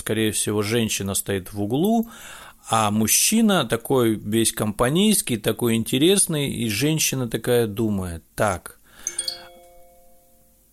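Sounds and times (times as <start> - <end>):
speech: 0.0 - 9.2
mobile phone ringtone chiming with bell-like notes: 9.0 - 10.6.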